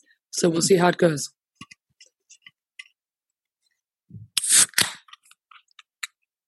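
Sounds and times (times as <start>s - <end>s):
speech: 0.4s - 1.4s
beer can being opened at the microphone: 4.4s - 5.2s.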